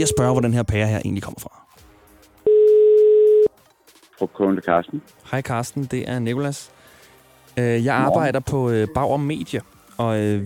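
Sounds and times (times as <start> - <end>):
speech: 0.0 - 1.6, 4.2 - 6.8, 7.6 - 10.4
telephone ringback tone during outgoing call: 2.5 - 3.5.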